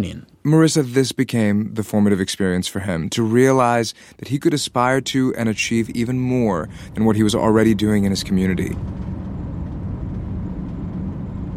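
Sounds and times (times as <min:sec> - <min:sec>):
speech: 0:00.0 - 0:09.2
car engine and road rumble driving through countryside: 0:04.2 - 0:11.5
tire noise: 0:04.2 - 0:11.5.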